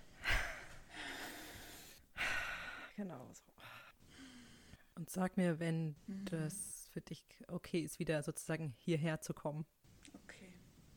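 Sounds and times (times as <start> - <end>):
deep breathing in and out: 0.0 - 3.0, 3.6 - 4.9
speech: 3.0 - 3.8, 5.0 - 10.6.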